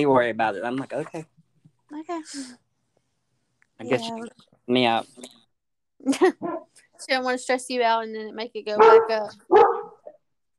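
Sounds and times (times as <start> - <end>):
speech: 0.0 - 2.6, 3.8 - 5.4, 6.0 - 9.7
boxer dog barking: 8.8 - 10.2.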